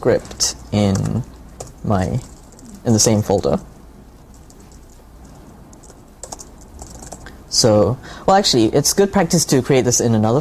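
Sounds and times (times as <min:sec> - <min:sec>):
speech: 0:00.0 - 0:03.7, 0:07.6 - 0:10.4
faint hiss: 0:00.0 - 0:10.4
typing on a computer keyboard: 0:00.2 - 0:02.8, 0:04.3 - 0:07.3.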